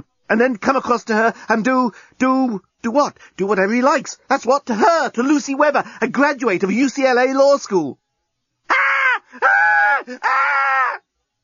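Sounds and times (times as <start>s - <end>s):
speech: 0.0s - 8.0s, 9.4s - 10.6s
woman screaming in terror: 8.7s - 11.0s.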